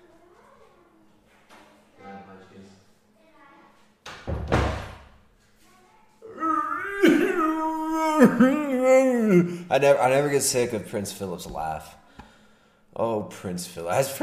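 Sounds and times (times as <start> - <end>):
door swinging shut with a solid thud: 4.2 - 5.1
children yelling, high-pitched: 6.2 - 9.6
speech: 8.2 - 12.0, 13.0 - 14.2.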